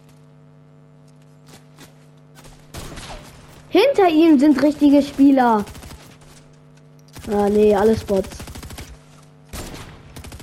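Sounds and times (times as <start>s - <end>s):
low steady hum: 0.0s - 10.4s
video game gunfire: 2.4s - 10.4s
speech: 3.7s - 5.8s, 7.3s - 8.4s.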